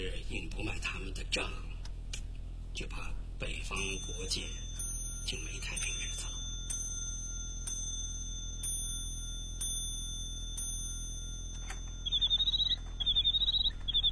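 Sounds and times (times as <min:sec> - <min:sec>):
speech: 0:00.0 - 0:01.8, 0:02.8 - 0:06.3
bird-song clock chirping: 0:03.7 - 0:14.1
bird-song clock metallic clinks: 0:03.8 - 0:14.1.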